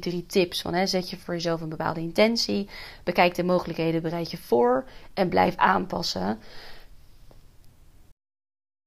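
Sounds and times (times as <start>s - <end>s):
speech: 0.0s - 6.8s
faint breath: 2.7s - 3.0s, 4.9s - 5.2s, 6.4s - 7.3s.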